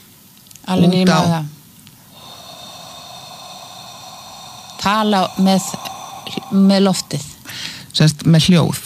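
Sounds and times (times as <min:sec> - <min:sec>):
speech: 0:00.7 - 0:01.6, 0:04.8 - 0:07.4, 0:08.0 - 0:08.8
slow inhalation through the nose: 0:02.0 - 0:08.0.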